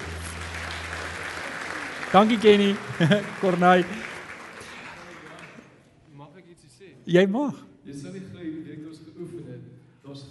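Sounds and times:
room full of people applauding: 0.0 - 5.8
laughter: 1.2 - 5.2
speech: 2.1 - 4.1, 7.1 - 9.4.

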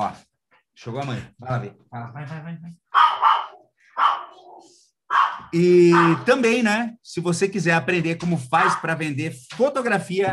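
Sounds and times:
speech: 0.0 - 0.2, 0.8 - 3.0, 5.5 - 10.3
dog barking in short sharp bursts: 2.9 - 6.3.

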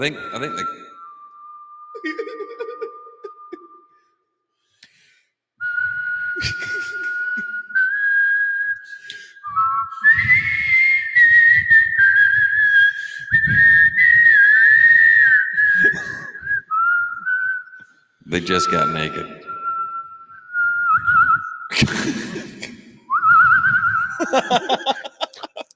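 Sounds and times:
speech: 0.0 - 0.8, 18.4 - 19.4
person whistling a tune: 0.0 - 4.2, 5.6 - 21.8, 23.1 - 25.0
giggles and stifled laughter: 2.0 - 3.6, 6.4 - 7.8, 15.8 - 16.3, 21.7 - 22.8, 23.7 - 25.7.

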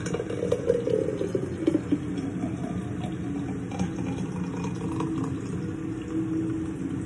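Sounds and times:
thick blended smoothie poured into a cup by a mother: 0.0 - 6.6.

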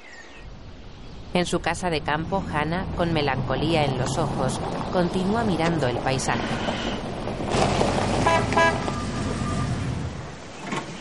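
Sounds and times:
speech: 1.3 - 7.2
white car pulling up and stopping in front of a country house: 2.3 - 10.9.

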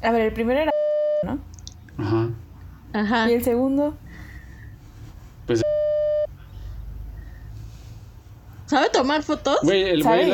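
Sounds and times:
speech: 0.0 - 2.2, 3.0 - 4.0, 5.5 - 5.7, 8.7 - 10.3
electronic censorship bleep: 5.6 - 6.3.

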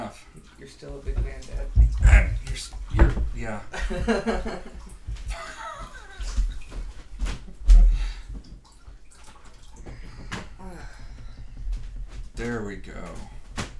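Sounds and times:
cat water fountain trickling and dripping: 0.0 - 13.7
speech: 0.1 - 4.8
people chuckling softly: 3.8 - 6.6.

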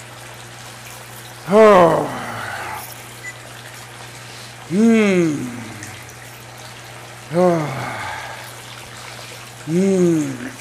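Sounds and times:
cold water pouring from a spout and splashing: 0.0 - 10.5
speech: 1.5 - 2.2, 4.7 - 5.5, 9.7 - 10.5
person letting out strained groans: 1.5 - 2.9, 4.7 - 6.0, 7.3 - 8.4, 9.7 - 10.5.

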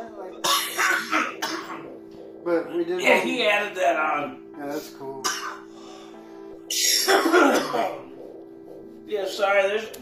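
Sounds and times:
harsh raspy coughing after smoking: 0.4 - 1.9, 5.2 - 5.7, 6.7 - 8.1
speech: 2.4 - 5.3, 7.1 - 8.1, 9.1 - 10.0.

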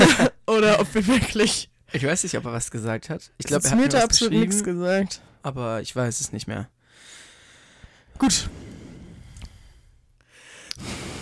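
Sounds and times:
speech: 0.5 - 7.1, 8.2 - 8.6, 10.8 - 11.0
heavy breathing close to the microphone: 6.8 - 11.2.

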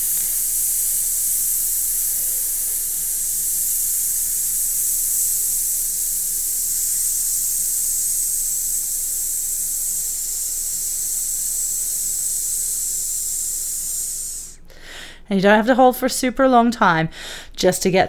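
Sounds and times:
sustained voiced tss hiss as a breathing exercise: 0.0 - 14.7
gentle in-breath while standing: 12.6 - 15.3, 17.1 - 17.6
speech: 15.3 - 18.0.

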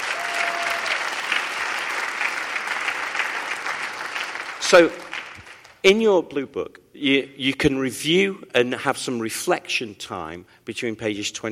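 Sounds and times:
audience clapping: 0.0 - 5.8
speech: 4.7 - 5.0, 5.8 - 11.5.

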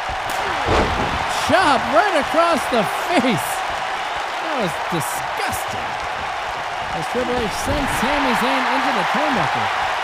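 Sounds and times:
large arena crowd roaring: 0.0 - 10.0
wrestler body slam on a wrestling mat from a clothesline: 0.5 - 1.3
speech: 1.5 - 3.6, 4.6 - 5.7, 7.0 - 9.9.

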